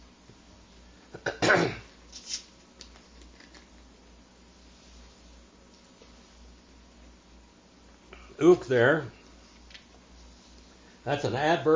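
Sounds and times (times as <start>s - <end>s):
raspy cough: 1.1s - 1.9s
soft throat clearing: 1.1s - 1.9s
speech: 8.4s - 9.2s, 11.1s - 11.7s.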